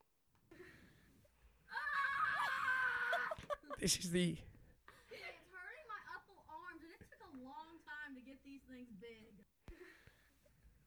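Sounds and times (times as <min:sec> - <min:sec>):
woman screaming shrilly: 0:01.7 - 0:03.6
speech: 0:03.8 - 0:04.5.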